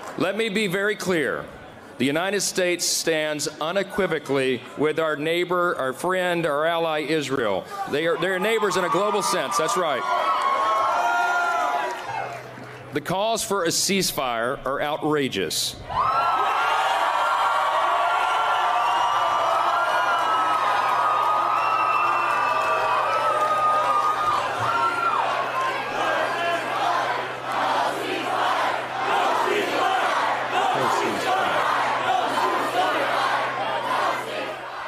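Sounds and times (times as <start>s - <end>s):
speech: 0.2s - 10.4s, 12.9s - 16.3s
crowd cheering: 7.7s - 12.8s, 15.8s - 34.8s
large crowd chanting a political slogan in unison: 24.0s - 34.8s.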